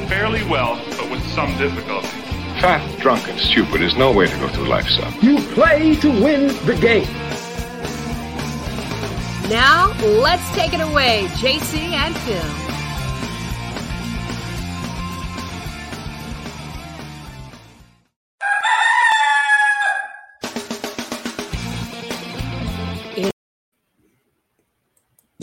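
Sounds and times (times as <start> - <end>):
music: 0.0 - 18.2, 20.4 - 23.4
speech: 0.2 - 7.3, 9.5 - 12.6
rooster crowing: 18.4 - 20.4.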